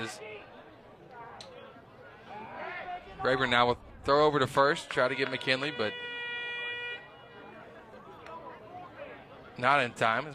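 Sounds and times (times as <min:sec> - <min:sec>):
speech: 0:00.0 - 0:00.6, 0:03.2 - 0:06.1, 0:09.6 - 0:10.3
stadium crowd chattering at a baseball game: 0:00.0 - 0:10.3
air horn blaring at a baseball game: 0:05.2 - 0:07.3.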